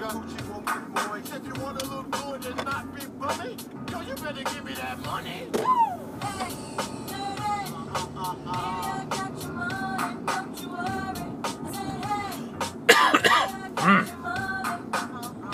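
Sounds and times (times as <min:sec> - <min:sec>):
steady hum of traffic: 0:00.0 - 0:15.5
speech: 0:03.6 - 0:07.0
person coughing harshly: 0:12.9 - 0:14.1
rough throat clearing: 0:12.9 - 0:14.1.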